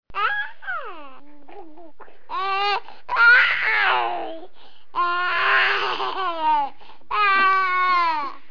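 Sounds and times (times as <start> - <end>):
baby cooing: 0.1 - 8.4.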